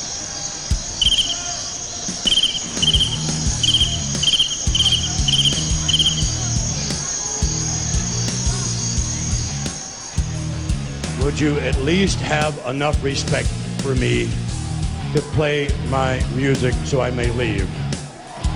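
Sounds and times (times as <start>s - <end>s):
crickets chirping: 0.0s - 10.2s
low murmur of noise: 0.0s - 15.7s, 17.8s - 18.5s
speech: 11.3s - 14.4s, 15.1s - 17.8s.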